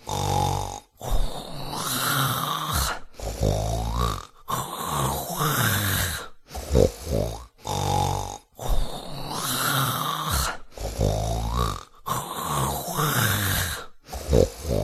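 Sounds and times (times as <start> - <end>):
man snoring loudly in his sleep: 0.0 - 14.8.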